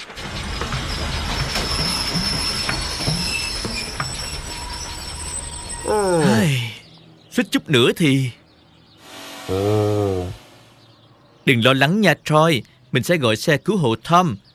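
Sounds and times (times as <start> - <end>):
metallic screech of braking train wheels: 0.0 - 8.0, 8.9 - 11.3
train rumbling with faint clicks: 0.0 - 14.5
speech: 5.9 - 6.3, 7.4 - 8.4, 9.5 - 10.4, 11.5 - 14.5.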